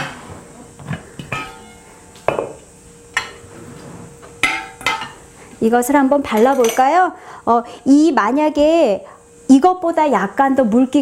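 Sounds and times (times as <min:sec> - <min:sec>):
metal cooking pot clanking as it is set down and shifted: 0:01.2 - 0:02.6, 0:04.4 - 0:05.2, 0:06.3 - 0:06.9
speech: 0:05.6 - 0:11.0.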